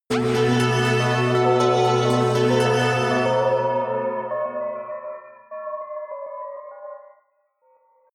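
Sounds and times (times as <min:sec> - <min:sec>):
synth bells rolling high: 0:00.1 - 0:07.0.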